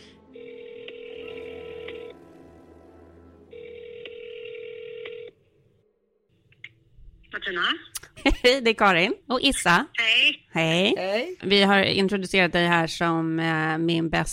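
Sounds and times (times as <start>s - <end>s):
outgoing telephone call ring tones: 0.3s - 2.2s, 3.5s - 5.4s
speech: 7.4s - 14.3s.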